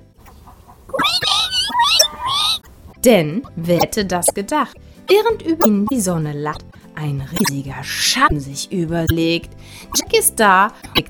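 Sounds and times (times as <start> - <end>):
twin kittens squealing shrilly: 0.9 - 2.6, 7.4 - 8.2
speech: 3.0 - 11.0.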